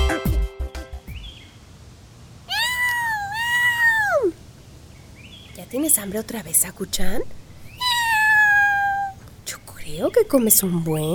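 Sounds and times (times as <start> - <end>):
cat meowing: 2.5 - 4.4, 7.7 - 9.2
speech: 5.8 - 7.4, 9.9 - 11.1.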